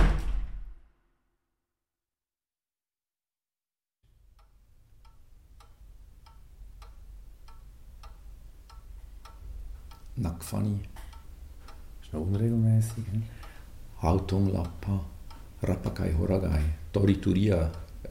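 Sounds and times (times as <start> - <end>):
heavy door slamming shut: 0.0 - 0.9
steady regular ticking: 4.1 - 18.0
speech: 10.2 - 11.0, 12.1 - 13.4, 14.0 - 18.0.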